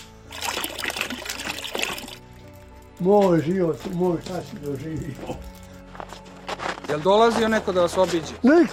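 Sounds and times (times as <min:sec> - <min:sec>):
water melted from snow poured out for sheep and pigs: 0:00.0 - 0:04.8
speech: 0:03.0 - 0:05.6, 0:06.9 - 0:08.7.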